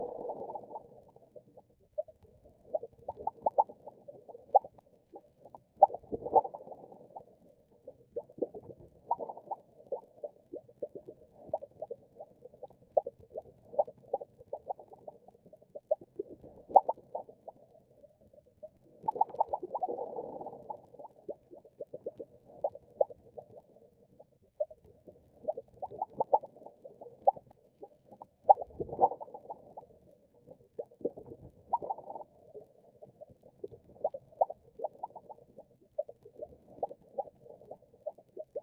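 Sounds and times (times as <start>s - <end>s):
soft delicate aquatic sound: 0.0s - 38.6s.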